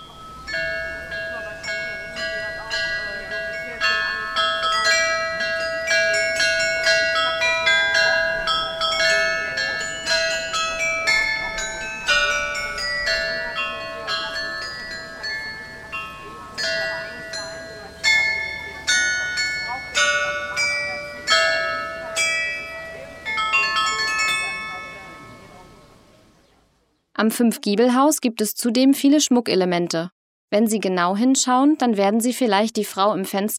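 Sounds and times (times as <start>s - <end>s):
carillon of 32 bells playing a lively melody: 0.0s - 26.1s
outdoor ambience: 0.0s - 27.6s
speech: 27.2s - 33.5s.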